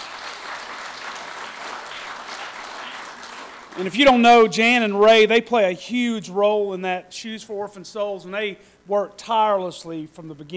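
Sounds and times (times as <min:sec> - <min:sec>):
audience applause: 0:00.0 - 0:04.5
speech: 0:03.8 - 0:10.5.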